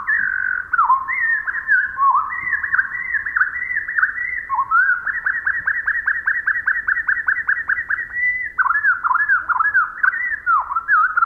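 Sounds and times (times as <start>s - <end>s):
Pacific Wren song slowed to quarter speed: 0.0s - 11.2s.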